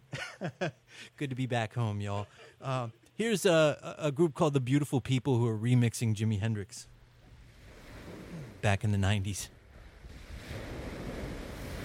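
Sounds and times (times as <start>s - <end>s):
speech: 0.4s - 6.9s, 8.6s - 9.6s
ocean surf rolling and washing: 7.4s - 8.7s, 9.7s - 11.8s
wind buffeting the microphone: 9.6s - 11.8s.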